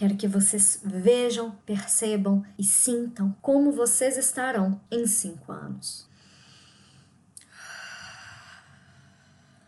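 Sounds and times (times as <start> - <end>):
speech: 0.0 - 6.1
slow deep breath during a guided visualization exercise: 6.1 - 9.6.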